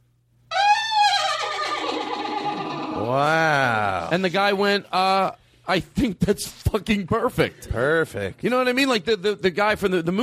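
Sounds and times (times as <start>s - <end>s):
person imitating a horse's neigh: 0.5s - 4.1s
speech: 3.1s - 3.4s, 4.1s - 10.2s.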